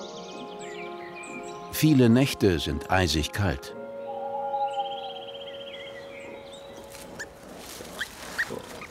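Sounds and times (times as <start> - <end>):
speech: 1.7 - 3.8
newborn wild boar piglets squeaking and chirping in a nest of twigs: 6.3 - 8.8.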